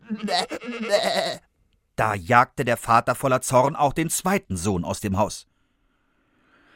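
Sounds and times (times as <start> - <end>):
human voice imitating a goat's wavering bleat: 0.0 - 1.4
speech: 0.1 - 1.4, 2.0 - 5.5.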